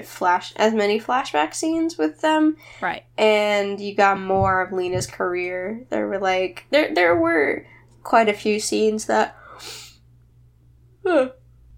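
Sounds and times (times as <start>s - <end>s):
speech: 0.0s - 9.8s, 11.1s - 11.4s
low steady hum: 0.0s - 11.7s
breathy exhale: 9.4s - 10.0s.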